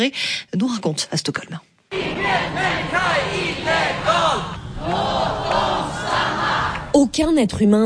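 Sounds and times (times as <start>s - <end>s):
speech: 0.0s - 1.7s, 7.0s - 7.8s
protest crowd chanting slogans in unison: 1.9s - 7.0s.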